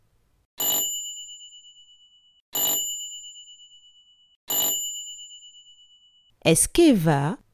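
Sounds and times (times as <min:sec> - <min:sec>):
bright bell ringing: 0:00.6 - 0:06.3
speech: 0:06.4 - 0:07.4.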